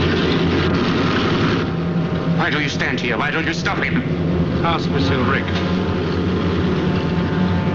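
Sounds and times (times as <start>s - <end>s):
airplane engine drone: 0.0s - 7.7s
speech: 2.5s - 5.8s.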